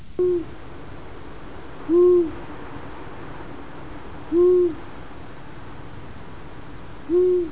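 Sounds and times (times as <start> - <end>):
owl: 0.2 - 0.5, 1.9 - 2.4, 4.3 - 4.8, 7.1 - 7.5.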